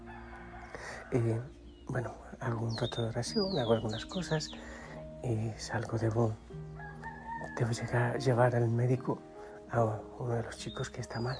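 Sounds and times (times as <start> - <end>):
rooster crowing at first light: 0.0 - 1.4, 6.7 - 7.9
speech: 1.1 - 6.7, 7.6 - 11.3.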